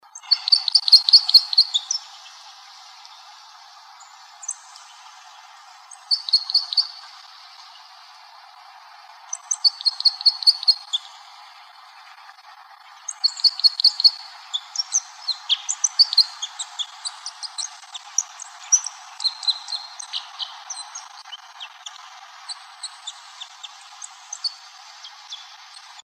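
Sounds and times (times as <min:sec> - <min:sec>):
Red Crossbill: 0:00.2 - 0:02.3, 0:05.8 - 0:07.2, 0:09.3 - 0:11.1, 0:13.1 - 0:26.0.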